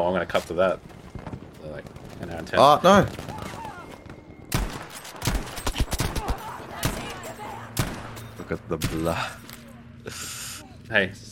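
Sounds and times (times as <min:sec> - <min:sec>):
speech: 0:00.0 - 0:01.0, 0:01.6 - 0:03.3, 0:08.5 - 0:09.4, 0:10.1 - 0:11.3
gunfire in a video game: 0:03.0 - 0:09.3.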